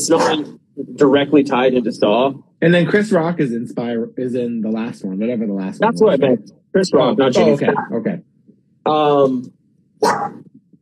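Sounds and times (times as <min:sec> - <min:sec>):
laughter: 0:00.0 - 0:08.2, 0:08.9 - 0:09.4
speech: 0:00.0 - 0:10.5
dog barking: 0:00.1 - 0:00.5, 0:10.0 - 0:10.4.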